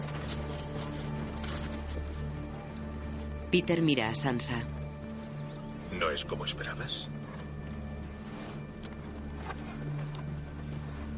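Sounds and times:
ridden horse hooves clip-clopping: 0.0s - 3.4s, 7.1s - 11.1s
speech: 3.5s - 4.8s, 6.0s - 7.2s.

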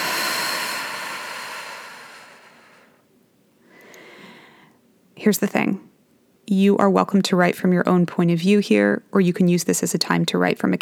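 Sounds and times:
deep breath during a guided breathing exercise: 0.0s - 3.0s, 3.6s - 4.8s
speech: 5.2s - 5.9s, 6.5s - 10.8s.

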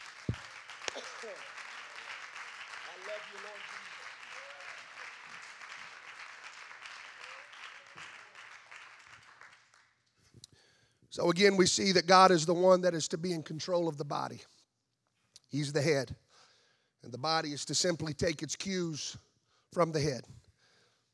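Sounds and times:
audience applauding: 0.0s - 10.0s
speech: 3.2s - 3.9s, 11.2s - 14.5s, 15.5s - 16.2s, 17.0s - 20.4s.

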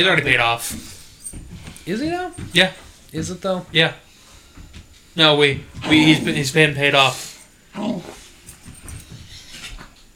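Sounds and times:
speech: 0.0s - 0.9s, 1.8s - 4.0s, 5.2s - 8.2s
dog growling and whining while playing: 7.7s - 8.3s.

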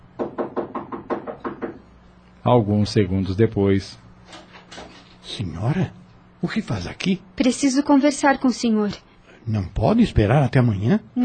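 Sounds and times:
rapid knocking on a door: 0.2s - 1.9s
speech: 2.4s - 4.4s, 5.3s - 11.2s.

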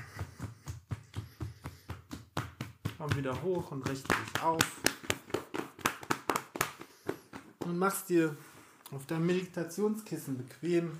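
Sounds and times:
fingertips tapping on the soles of the feet: 0.0s - 8.2s
speech: 3.0s - 4.9s, 7.7s - 10.9s.

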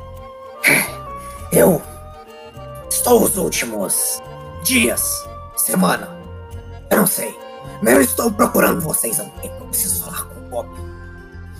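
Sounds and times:
person coughing: 0.6s - 1.0s
speech: 1.5s - 1.9s, 3.0s - 6.2s, 6.9s - 10.9s.

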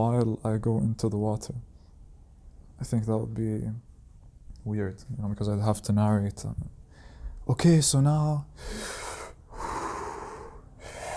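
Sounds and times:
speech: 0.0s - 1.7s, 2.8s - 3.9s, 4.6s - 6.8s, 7.5s - 9.0s
deep noisy breathing before stepping into cold water: 8.5s - 11.1s.

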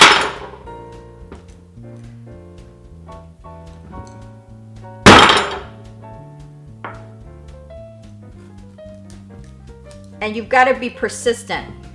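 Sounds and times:
soft melodic music: 0.6s - 5.1s, 5.7s - 11.9s
cleaver banging through a kabocha squash: 5.1s - 5.8s
speech: 10.2s - 11.8s.

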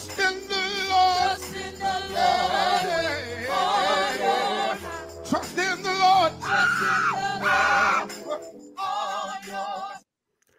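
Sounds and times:
group singing together: 0.1s - 10.0s
man screaming: 6.3s - 8.2s.

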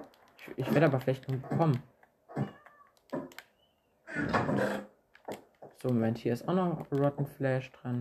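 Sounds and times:
speech: 0.4s - 2.5s, 5.8s - 7.9s
cat meowing: 2.4s - 3.0s.

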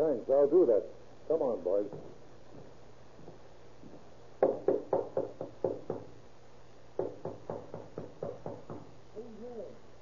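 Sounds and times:
speech: 0.2s - 2.7s
knocking on a door: 1.9s - 2.2s, 4.4s - 6.2s, 7.0s - 9.0s.

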